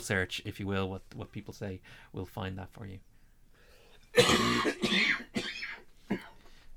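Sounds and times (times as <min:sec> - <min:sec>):
speech: 0:00.0 - 0:03.1, 0:04.1 - 0:05.5, 0:06.1 - 0:06.3
person coughing: 0:04.1 - 0:06.4
person clearing throat: 0:04.2 - 0:06.4.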